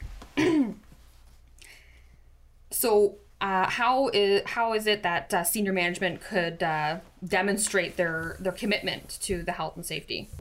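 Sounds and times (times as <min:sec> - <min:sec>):
person clearing throat during a health and safety presentation: 0:00.4 - 0:00.9
speech: 0:02.8 - 0:10.3.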